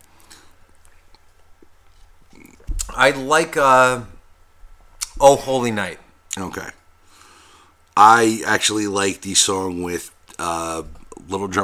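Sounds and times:
person sipping a drink: 0.2 - 2.7
speech: 3.0 - 4.1, 5.2 - 6.8, 8.0 - 11.6.

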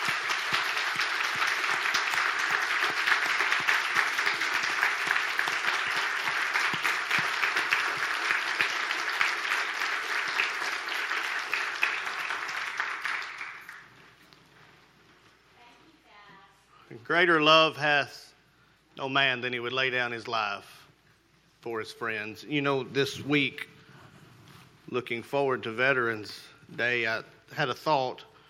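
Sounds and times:
large crowd clapping for armed forces veterans: 0.0 - 14.2
speech: 17.2 - 18.3, 19.0 - 20.8, 21.6 - 23.7, 24.9 - 28.3.

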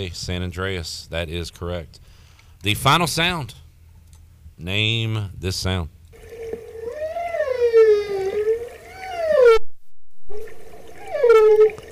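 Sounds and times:
speech: 0.0 - 3.6, 4.6 - 6.0
humpback whale song: 6.2 - 9.6, 10.3 - 11.9.

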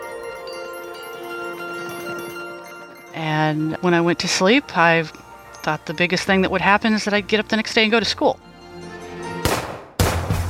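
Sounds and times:
speech: 3.2 - 8.5
gunshots: 9.4 - 10.4.

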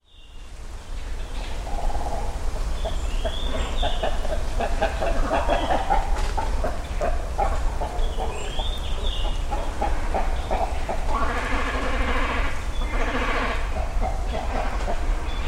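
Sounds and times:
great cormorants clucking and croaking at nests in trees along a river in Japan: 1.2 - 15.4.

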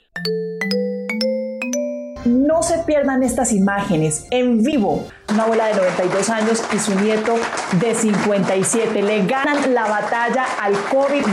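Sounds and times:
bells chiming in a rising sequence: 0.0 - 2.6
speech: 0.2 - 0.8, 2.6 - 11.3.

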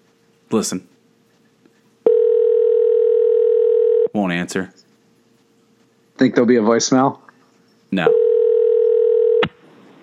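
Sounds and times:
speech: 0.5 - 1.0, 4.2 - 4.9, 6.2 - 7.2, 7.9 - 8.2
telephone dial tone while dialing a call: 2.1 - 4.1, 8.1 - 9.5.

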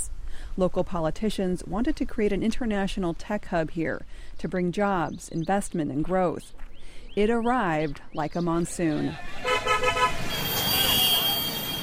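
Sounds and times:
speech: 0.6 - 6.6, 7.2 - 10.4
steady engine drone of city traffic: 8.8 - 11.8
repeated horn toots in busy city traffic: 9.1 - 11.8.

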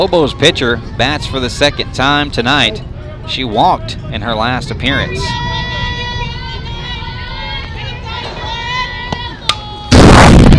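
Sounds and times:
speech: 0.0 - 5.5
crowd murmur: 0.0 - 10.0
foul ball hitting fence: 9.9 - 10.5.

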